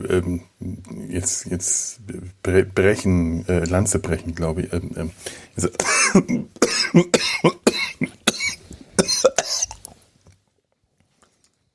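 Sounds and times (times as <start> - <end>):
speech: 0.0 - 7.5
short gasping breaths: 5.2 - 5.6
person coughing in a rapid harsh fit: 5.8 - 9.8.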